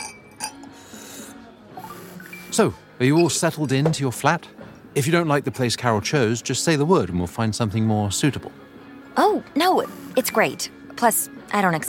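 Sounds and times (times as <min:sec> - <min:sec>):
glasses clinking in a toast: 0:00.0 - 0:00.7, 0:01.8 - 0:05.8
speech: 0:02.6 - 0:11.8.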